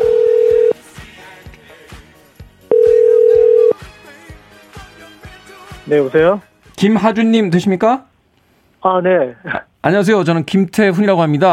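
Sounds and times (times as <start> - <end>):
telephone line tone while placing a call: 0.0 - 0.8, 2.7 - 3.8
rhythmic music: 0.0 - 7.6
speech: 5.9 - 8.1, 8.8 - 11.5.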